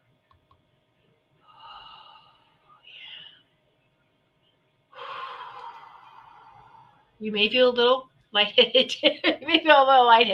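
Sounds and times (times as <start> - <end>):
breathy inhale: 1.4 - 3.5, 4.9 - 7.2
long loud whooshing exhale: 5.0 - 7.1
speech: 7.2 - 10.3.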